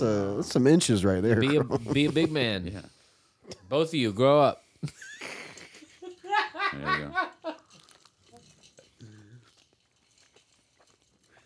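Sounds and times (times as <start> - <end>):
speech: 0.0 - 5.1
laughter: 1.2 - 2.5, 4.8 - 7.7
two people chewing a hot spicy sausage: 4.9 - 11.4.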